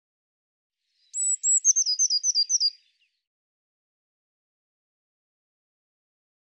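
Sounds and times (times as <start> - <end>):
Eurasian blue tit calling: 1.1 - 2.9.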